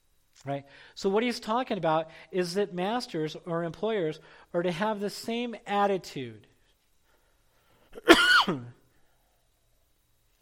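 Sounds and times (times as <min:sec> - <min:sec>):
speech: 0:00.4 - 0:06.5, 0:08.0 - 0:08.8
throat-clearing cough: 0:08.0 - 0:08.8.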